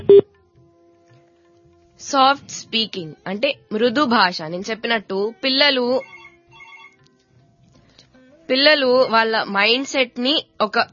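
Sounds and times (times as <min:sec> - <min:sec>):
speech: 0:02.0 - 0:06.2, 0:08.5 - 0:10.9
telephone ringtone signalling an incoming call: 0:05.9 - 0:07.0.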